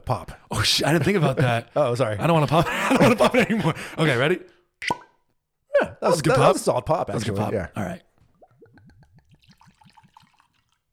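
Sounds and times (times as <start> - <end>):
speech: 0.1 - 5.0, 6.0 - 8.1
laughter: 2.4 - 3.8
whiskey glugging from a bottle as it is poured: 8.2 - 10.9.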